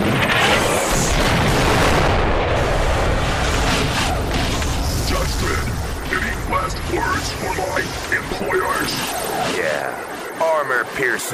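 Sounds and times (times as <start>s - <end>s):
booming cartoon cannon fire: 0.0s - 7.4s
cartoon weapon explosions: 0.0s - 10.4s.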